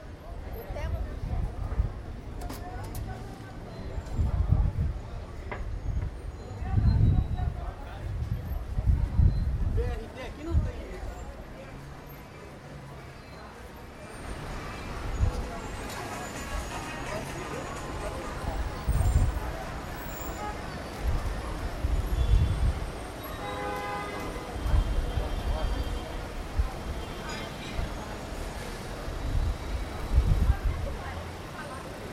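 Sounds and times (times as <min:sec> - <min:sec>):
street noise in Rio, Brazil: 0:00.0 - 0:32.1.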